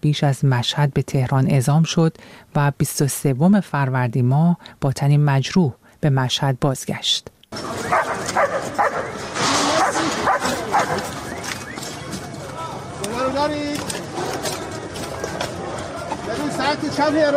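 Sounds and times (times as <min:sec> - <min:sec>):
speech: 0:00.0 - 0:09.6, 0:13.3 - 0:13.9, 0:16.5 - 0:17.3
busy noisy background: 0:07.5 - 0:17.3
search-and-rescue dog barking and yipping: 0:07.7 - 0:11.2.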